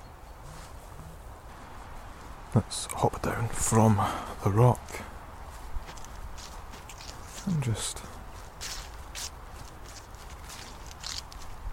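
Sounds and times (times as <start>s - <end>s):
soft hiss: 0.0s - 11.7s
speech: 2.6s - 5.1s, 7.5s - 8.2s
footsteps walking through leaves on grass: 5.4s - 11.7s.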